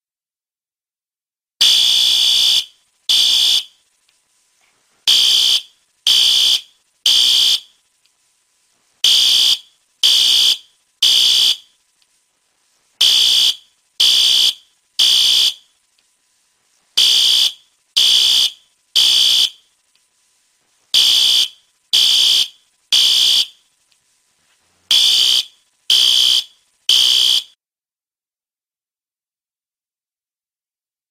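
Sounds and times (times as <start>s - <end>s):
System Sensor PC2WH fire alarm horn in Code-3 pattern: 1.6s - 3.7s, 5.1s - 7.7s, 9.0s - 11.7s, 13.0s - 15.6s, 17.0s - 19.6s, 20.9s - 23.6s, 24.9s - 27.6s.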